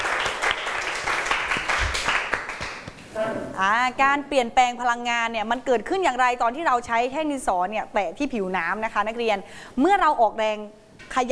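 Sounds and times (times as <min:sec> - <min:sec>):
classroom group applause: 0:00.0 - 0:03.0
speech: 0:03.6 - 0:11.3.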